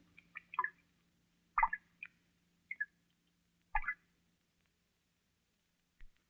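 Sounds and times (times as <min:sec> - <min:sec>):
water dripping into a small tank: 0:00.0 - 0:00.8, 0:01.5 - 0:04.0
faint steady hum: 0:00.0 - 0:06.2.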